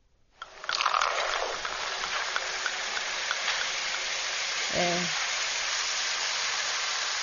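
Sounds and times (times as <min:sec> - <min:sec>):
carbonated soft drink fizzing: 0:00.3 - 0:07.2.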